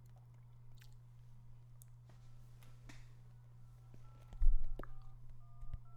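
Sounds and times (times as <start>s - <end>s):
low steady hum: 0.0s - 5.9s
electronic telephone tones of a number being dialed: 4.0s - 5.9s.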